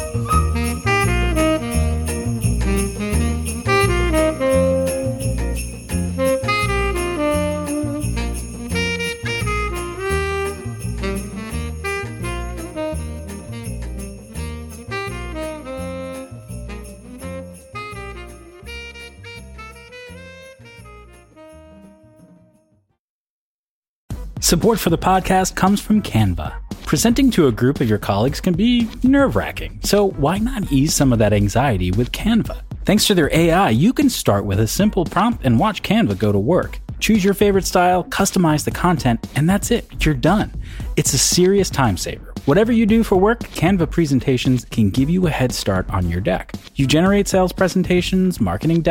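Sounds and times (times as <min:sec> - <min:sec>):
bouncing bass beat: 0:00.0 - 0:20.5, 0:24.1 - 0:35.9, 0:36.6 - 0:48.8
sleigh bells jingling: 0:00.0 - 0:22.4
upbeat instrumental tune: 0:00.0 - 0:22.6, 0:24.1 - 0:48.8
speech: 0:24.5 - 0:48.8.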